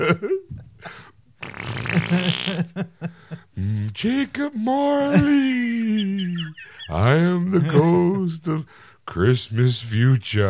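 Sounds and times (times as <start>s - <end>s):
speech: 0.0s - 0.4s, 4.0s - 5.6s, 6.4s - 10.4s
laughter: 0.0s - 1.0s, 1.9s - 8.6s
fart: 1.4s - 2.7s.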